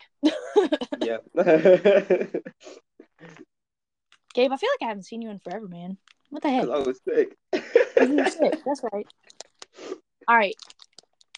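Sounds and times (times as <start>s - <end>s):
speech: 0.2s - 3.4s, 4.4s - 10.8s
laughter: 0.3s - 2.5s, 7.6s - 8.7s
Gushers fruit snack packets crinkling: 10.5s - 11.3s.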